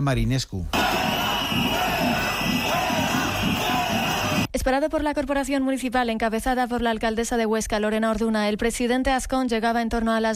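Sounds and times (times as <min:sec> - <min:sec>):
speech: 0:00.0 - 0:02.2, 0:04.6 - 0:10.3
crowd of education-sector protesters shouting at entrance of Centro Cultural Matadero: 0:00.8 - 0:04.5.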